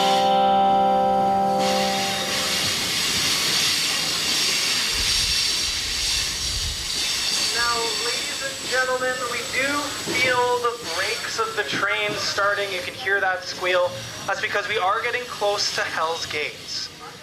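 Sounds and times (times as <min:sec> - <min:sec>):
long horn-like tone of a train: 0:00.0 - 0:02.9
train rolling on rails with rumble and hiss: 0:00.0 - 0:17.2
speech: 0:09.0 - 0:17.2.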